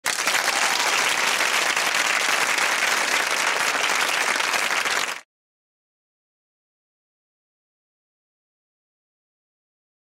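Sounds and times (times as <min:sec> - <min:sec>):
TV audience applause: 0:00.0 - 0:05.3.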